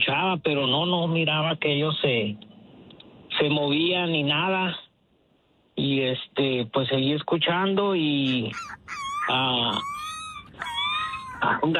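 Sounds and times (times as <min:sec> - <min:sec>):
speech: 0:00.1 - 0:02.5, 0:03.4 - 0:04.8, 0:05.8 - 0:09.9, 0:11.4 - 0:11.7
human voice imitating a small dog crying: 0:08.2 - 0:11.7.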